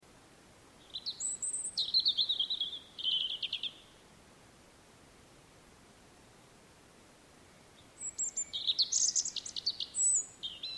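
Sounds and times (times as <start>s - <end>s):
European robin singing: 0.8s - 4.0s, 7.8s - 10.7s.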